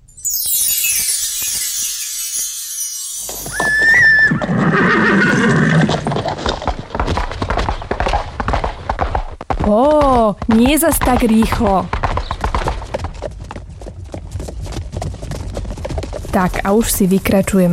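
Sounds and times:
horse hooves clip-clopping: 0:03.2 - 0:17.7
horse neighing: 0:03.4 - 0:06.2
speech: 0:09.7 - 0:12.0, 0:16.4 - 0:17.7.

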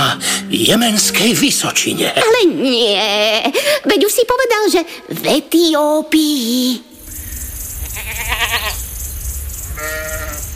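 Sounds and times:
speech: 0:00.1 - 0:06.9
low rumbling background: 0:07.0 - 0:10.5
goats bleating: 0:08.0 - 0:08.8, 0:09.8 - 0:10.4.

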